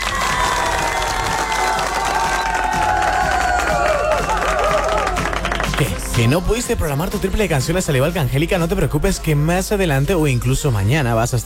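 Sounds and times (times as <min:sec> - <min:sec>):
excited shouts and whistles: 0:00.0 - 0:05.1
large crowd cheering: 0:00.0 - 0:06.6
large crowd clapping: 0:00.0 - 0:07.5
speech: 0:06.2 - 0:11.4.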